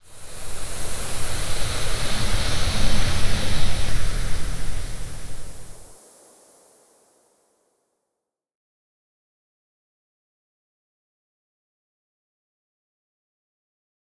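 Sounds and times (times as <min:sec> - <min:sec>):
gas cloud: 0:00.0 - 0:07.3.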